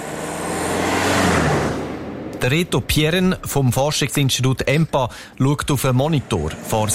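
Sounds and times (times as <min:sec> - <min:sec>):
petrol car engine accelerating during a test drive: 0:00.0 - 0:03.7, 0:05.7 - 0:06.9
constant broadband road noise: 0:00.0 - 0:06.9
speech: 0:02.4 - 0:06.9.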